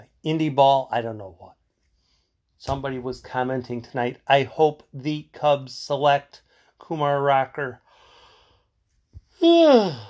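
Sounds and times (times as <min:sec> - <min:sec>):
speech: 0:00.2 - 0:01.6, 0:02.6 - 0:07.8, 0:09.4 - 0:10.0
long drawn-out voiced yawn: 0:09.4 - 0:10.0.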